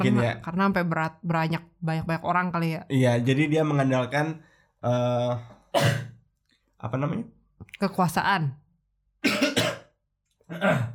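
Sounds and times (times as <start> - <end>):
speech: 0.0 - 6.1, 6.8 - 8.6, 10.5 - 10.9
harsh throat clearing: 5.7 - 6.2, 9.2 - 10.9
person coughing: 5.8 - 6.2, 9.2 - 10.9.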